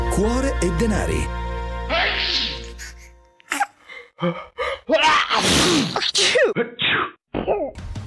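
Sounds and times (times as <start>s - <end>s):
speech: 0.2s - 1.4s, 4.2s - 4.5s, 5.7s - 6.8s
person sneezing: 1.9s - 3.8s, 5.1s - 7.7s.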